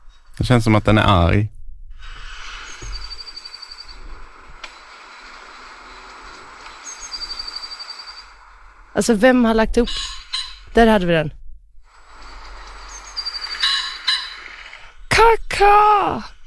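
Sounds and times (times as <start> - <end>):
steady outdoor ambience: 0.0 - 16.4
speech: 0.4 - 1.6, 9.0 - 10.2, 10.8 - 11.4, 15.6 - 16.4
birds chirping in rapid high-pitched trills: 2.4 - 4.2, 5.8 - 11.2, 12.0 - 16.4
bird calling with thin whistle and harsh raspy squawks, possibly corvid: 6.8 - 8.4, 9.8 - 10.8, 12.9 - 14.9.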